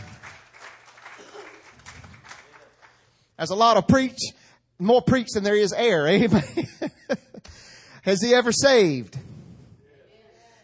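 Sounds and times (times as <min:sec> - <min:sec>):
congregation clapping hands in praise during a church sermon: 0:00.0 - 0:03.3
laughter: 0:01.0 - 0:02.0, 0:06.2 - 0:07.6
speech: 0:03.4 - 0:06.7, 0:08.0 - 0:09.2.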